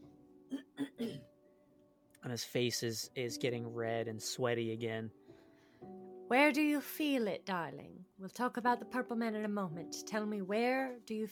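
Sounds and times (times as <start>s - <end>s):
short harsh coughs: 0.5s - 1.3s
speech: 2.2s - 5.2s, 6.3s - 11.3s.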